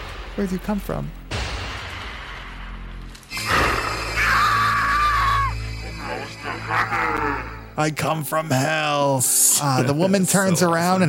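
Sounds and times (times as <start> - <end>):
speech: 0.4 - 1.2, 7.8 - 11.0
steady low drone: 1.9 - 7.8
wavering cries: 4.1 - 7.7
little kid's shrill scream in a horror film scene: 4.2 - 5.6.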